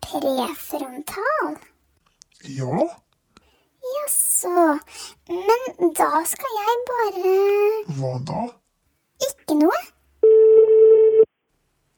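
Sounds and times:
speech: 0:00.1 - 0:01.7, 0:02.4 - 0:03.0, 0:03.8 - 0:08.6, 0:09.2 - 0:10.0
steady electronic telephone ringback tone during an outgoing call: 0:10.2 - 0:11.3.

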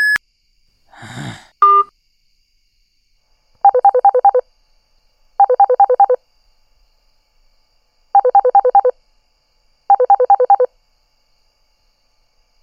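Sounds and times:
rapid pulsing phone tones: 0:00.0 - 0:00.2, 0:01.6 - 0:01.9, 0:03.7 - 0:04.4, 0:05.4 - 0:06.2, 0:08.2 - 0:08.9, 0:09.9 - 0:10.7
short electronic voicemail beep: 0:00.0 - 0:00.2, 0:01.6 - 0:01.9, 0:03.7 - 0:04.4, 0:05.4 - 0:06.2, 0:08.2 - 0:08.9, 0:09.9 - 0:10.7
breathy sigh: 0:00.9 - 0:01.6.

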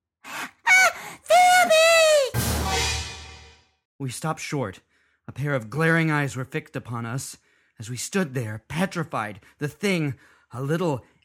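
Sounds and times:
woman's short sharp gasping cries: 0:00.3 - 0:01.9
woman's long loud high-pitched scream: 0:00.4 - 0:02.4
speech: 0:04.0 - 0:11.1.

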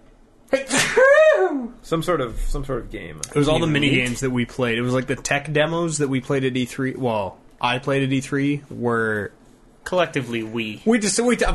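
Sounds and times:
loud sneeze: 0:00.5 - 0:01.7
speech: 0:01.8 - 0:11.5.

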